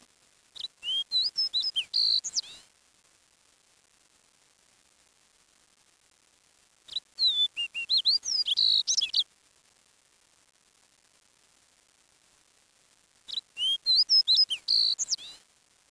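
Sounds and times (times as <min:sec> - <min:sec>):
bird song: 0:00.6 - 0:02.6, 0:06.9 - 0:09.2, 0:13.3 - 0:15.4.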